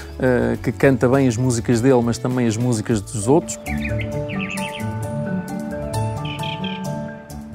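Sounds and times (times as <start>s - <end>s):
speech: 0.2s - 4.6s
thrush singing bright repeated chirping phrases: 3.6s - 7.4s.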